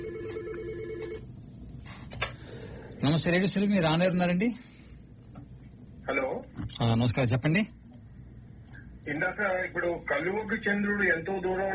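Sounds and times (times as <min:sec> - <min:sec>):
faint electronic telephone ring tone of an incoming call: 0:00.0 - 0:01.2
speech: 0:03.0 - 0:04.7, 0:06.8 - 0:07.8, 0:09.0 - 0:11.7.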